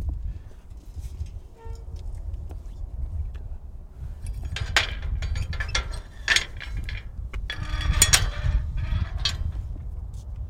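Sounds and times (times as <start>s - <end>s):
low rumbling background: 1.2s - 10.4s
metal gate creaking and rattling open: 1.6s - 2.0s, 4.4s - 9.7s
drawn-out squeal of metal gate hinges: 4.3s - 9.8s.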